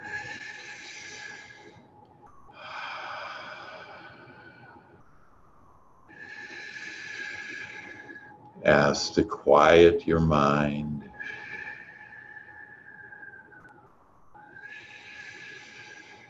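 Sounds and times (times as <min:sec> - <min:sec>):
slow deep breathing in and out during a guided meditation: 0:00.0 - 0:05.3, 0:05.9 - 0:08.6, 0:11.1 - 0:13.7, 0:14.5 - 0:16.2
speech: 0:08.7 - 0:11.0.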